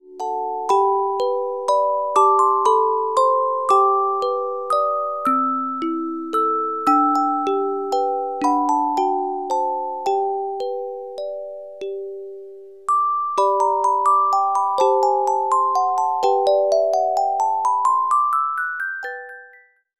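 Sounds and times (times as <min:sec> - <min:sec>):
carillon music box melodies: 0:00.0 - 0:19.9.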